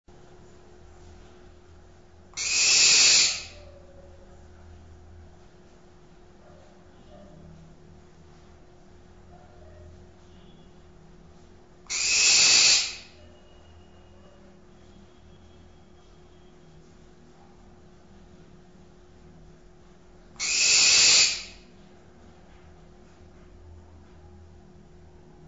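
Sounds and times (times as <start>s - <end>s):
barn owl: 2.3s - 4.5s, 11.8s - 14.6s, 20.4s - 21.8s.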